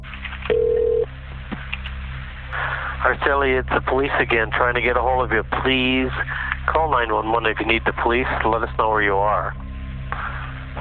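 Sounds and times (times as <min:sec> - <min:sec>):
low hum: 0:00.0 - 0:10.7
telephone ringback tone of a call going to voicemail: 0:00.5 - 0:01.1
speech: 0:03.1 - 0:09.6.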